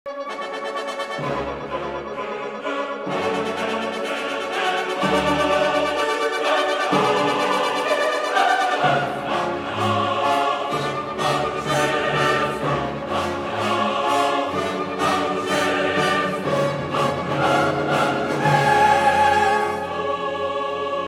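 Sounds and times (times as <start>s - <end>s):
choir singing: 0.3s - 21.0s.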